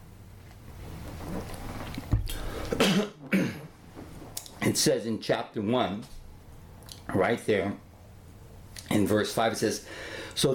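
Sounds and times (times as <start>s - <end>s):
speech: 2.7s - 3.6s, 4.8s - 6.2s, 7.1s - 7.8s, 9.0s - 10.5s
person clearing throat while teaching from the Bible: 2.7s - 3.7s.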